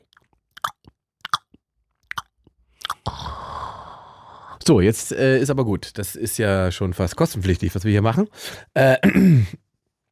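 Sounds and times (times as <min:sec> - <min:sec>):
chewing on a Philly cheesesteak: 0:00.0 - 0:03.1
speech: 0:04.6 - 0:09.6.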